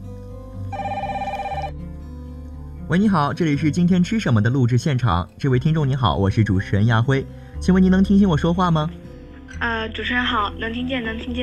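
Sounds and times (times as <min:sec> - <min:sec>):
electronic telephone ringing on a listener call-in hotline: 0:00.7 - 0:01.8
speech: 0:02.9 - 0:11.4.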